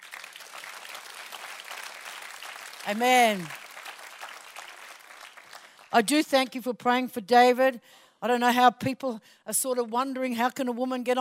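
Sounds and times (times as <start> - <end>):
church congregation applauding during a worship service: 0.0 - 6.1
speech: 2.8 - 3.6, 5.9 - 11.2.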